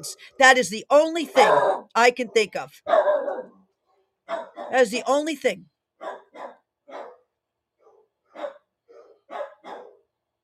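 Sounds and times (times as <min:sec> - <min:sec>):
speech: 0:00.0 - 0:03.2, 0:04.3 - 0:06.5
dogs barking: 0:01.4 - 0:03.6, 0:04.3 - 0:04.8, 0:06.0 - 0:07.2, 0:07.8 - 0:10.0.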